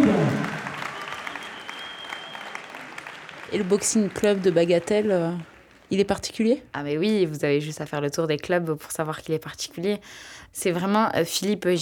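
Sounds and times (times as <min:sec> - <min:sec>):
audience applause: 0:00.0 - 0:05.9
speech: 0:03.5 - 0:11.8.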